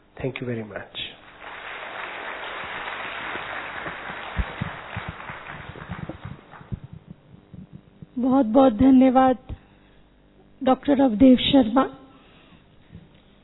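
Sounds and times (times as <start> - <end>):
speech: 0.2 - 1.0, 8.2 - 9.5, 10.6 - 12.0
audience applause thinning into slower individual claps: 1.2 - 7.0.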